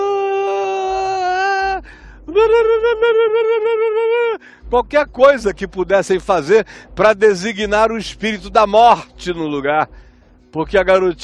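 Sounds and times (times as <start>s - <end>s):
professional mourners wailing and crying: 0.0s - 4.4s
speech: 2.4s - 11.2s.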